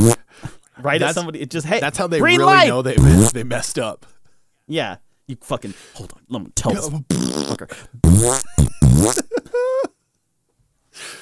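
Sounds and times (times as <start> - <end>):
speech: 0.0 - 0.2, 0.8 - 9.7
fart noises: 0.0 - 0.3, 3.0 - 3.4, 7.1 - 9.3.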